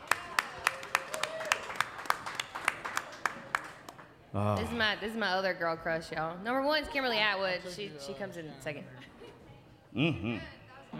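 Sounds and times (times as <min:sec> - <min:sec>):
audience applause of sharp handclaps: 0:00.0 - 0:04.0
speech: 0:04.4 - 0:09.1, 0:10.0 - 0:10.9.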